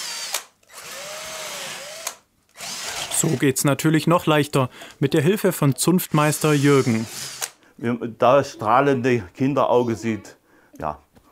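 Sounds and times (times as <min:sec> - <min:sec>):
power drill hollowing out a turnip: 0:00.0 - 0:03.4, 0:06.2 - 0:07.6
speech: 0:03.2 - 0:11.0.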